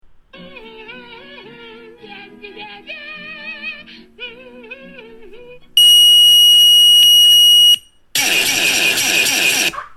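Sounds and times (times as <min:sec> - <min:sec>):
beeper: 0:05.8 - 0:09.7.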